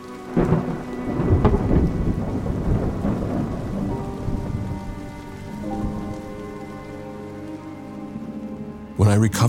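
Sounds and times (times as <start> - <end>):
deep thunder rumbling and rolling: 0.0 - 8.2
heavy rain pouring at night: 0.0 - 9.4
speech: 9.1 - 9.4.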